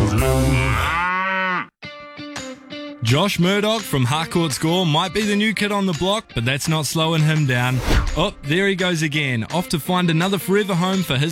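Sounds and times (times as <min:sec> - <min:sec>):
cow mooing: 0:00.0 - 0:01.8
speech: 0:03.0 - 0:11.2.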